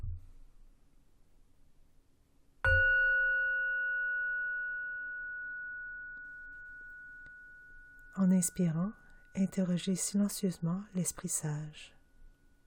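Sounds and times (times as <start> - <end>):
meditation bell struck in a quiet room: 2.7 - 10.0
speech: 8.2 - 12.0.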